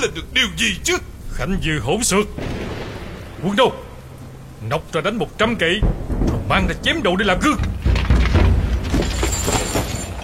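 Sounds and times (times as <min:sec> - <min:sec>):
speech: 0:00.0 - 0:02.8, 0:03.4 - 0:03.8, 0:04.6 - 0:07.7
dense rumbling noise: 0:00.0 - 0:10.2
small knocks: 0:05.9 - 0:10.2
head slammed onto stone floor, heavy booming impact: 0:07.6 - 0:10.2.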